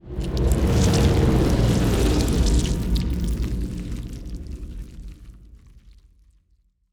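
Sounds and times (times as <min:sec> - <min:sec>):
ant ship titan moving: 0:00.1 - 0:04.1.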